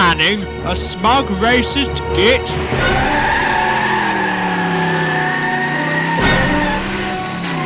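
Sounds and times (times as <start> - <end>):
speech: 0.2 - 3.2
car engine roaring as it accelerates away: 1.5 - 7.6
car tyres squealing loudly: 1.6 - 7.6.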